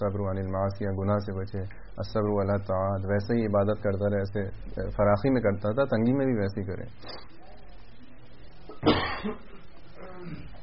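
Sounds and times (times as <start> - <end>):
speech: 0.0 - 7.4, 8.8 - 9.5
sharp throaty cough: 8.7 - 10.5.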